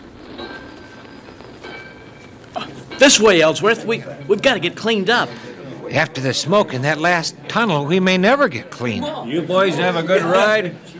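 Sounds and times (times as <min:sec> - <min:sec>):
fast train arriving at a station: 0:00.0 - 0:07.5
speech: 0:03.0 - 0:10.9.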